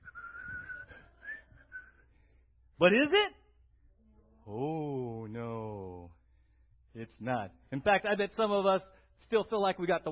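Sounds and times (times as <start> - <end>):
person whistling a tune: 0.0 - 2.1
speech: 2.8 - 3.4, 4.5 - 5.6, 7.0 - 10.1.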